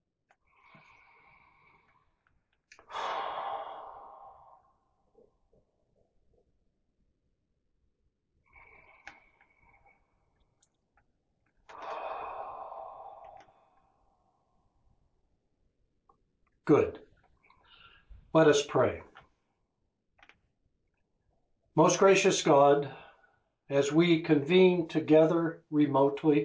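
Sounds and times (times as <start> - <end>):
deep breaths taken before prayer at a remote Lenten worship service: 0.3 - 5.5, 8.4 - 10.6, 11.7 - 15.1, 17.1 - 18.3, 22.8 - 23.7
speech: 16.7 - 17.0, 18.3 - 19.1, 21.8 - 23.0, 23.7 - 26.4.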